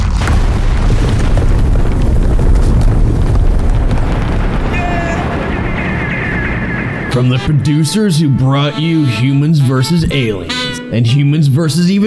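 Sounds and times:
explosion of a secret headquarters blowing up: 0.0 - 8.1
speech: 7.2 - 12.0.

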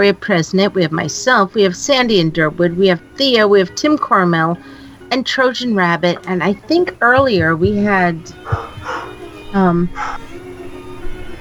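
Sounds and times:
speech: 0.0 - 8.7, 9.5 - 10.3
dog barking: 8.3 - 9.2, 10.0 - 10.2.

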